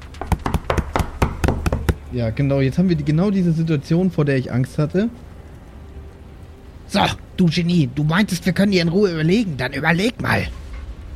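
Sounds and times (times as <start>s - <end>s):
hammering on doors: 0.0s - 2.1s
speech: 2.1s - 5.3s, 6.9s - 10.6s.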